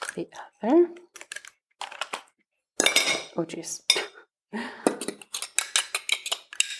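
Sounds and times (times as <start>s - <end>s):
speech: 0.2s - 1.0s, 3.4s - 5.1s
eggs being beaten in a bowl: 4.9s - 6.7s.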